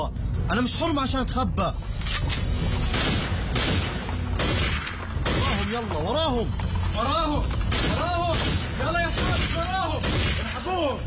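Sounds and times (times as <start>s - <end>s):
speech: 0.5s - 2.0s, 5.7s - 11.0s
dense continuous crackle of rapid gunfire: 2.8s - 10.8s.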